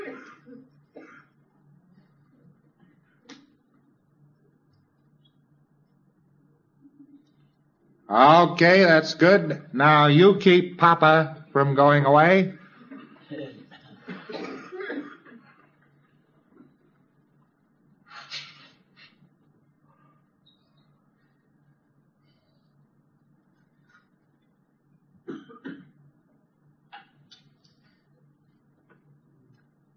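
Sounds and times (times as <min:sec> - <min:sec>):
throat clearing: 0:00.0 - 0:01.4, 0:12.8 - 0:15.6, 0:25.2 - 0:26.0
people coughing: 0:00.0 - 0:01.5, 0:12.6 - 0:15.8, 0:25.2 - 0:26.1
speech: 0:08.1 - 0:12.6.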